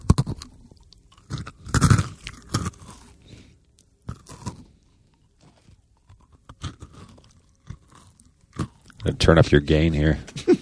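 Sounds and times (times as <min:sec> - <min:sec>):
loud crunchy chewing near a microphone: 0:00.0 - 0:09.4
speech: 0:09.1 - 0:10.5.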